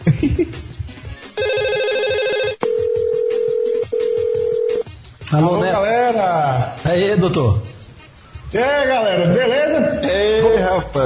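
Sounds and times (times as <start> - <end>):
speech: 0.1 - 0.7, 5.3 - 7.7, 8.5 - 11.0
telephone ringing as a call is placed: 1.4 - 4.8.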